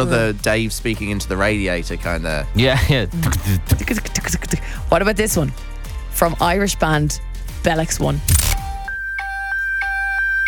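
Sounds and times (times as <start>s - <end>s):
speech: 0.0s - 8.6s
Nokia mobile phone ringtone: 8.9s - 10.4s.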